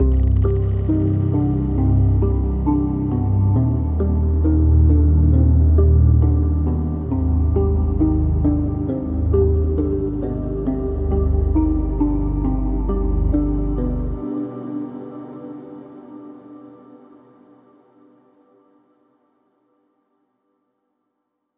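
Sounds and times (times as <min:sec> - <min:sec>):
melody in C minor at 135 BPM: 0:00.0 - 0:14.2.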